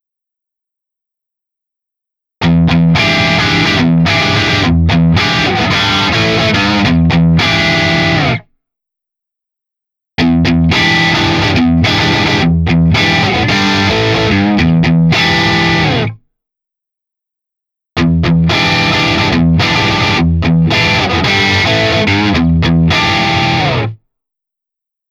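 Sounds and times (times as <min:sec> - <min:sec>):
crunchy electric guitar through single coil pickup: 0:02.4 - 0:08.5, 0:10.2 - 0:16.2, 0:18.0 - 0:24.0.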